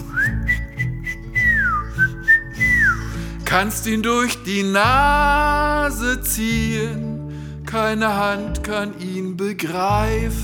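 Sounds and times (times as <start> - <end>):
cheerful bright whistled melody: 0.0 - 3.6
speech: 3.6 - 10.4.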